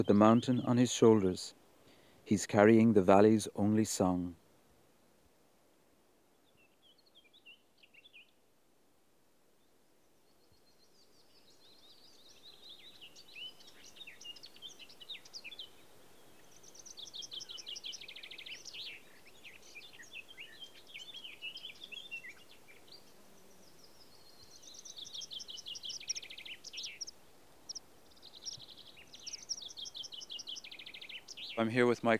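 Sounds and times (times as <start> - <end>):
speech: 0.0 - 1.6, 2.3 - 4.4, 31.8 - 32.1
meadow pipits calling in the sky: 11.3 - 31.8.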